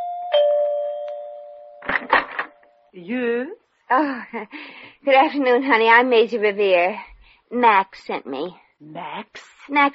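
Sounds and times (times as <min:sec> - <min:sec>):
two-note doorbell chime at a large country-club house: 0:00.0 - 0:01.8
speech: 0:02.9 - 0:09.9.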